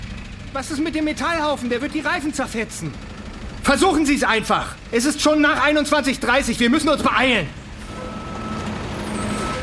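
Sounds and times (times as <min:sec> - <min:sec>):
truck engine rumbling while reversing: 0:00.0 - 0:09.6
speech: 0:00.5 - 0:03.1, 0:03.7 - 0:07.6
faint tonal beep: 0:07.9 - 0:09.6.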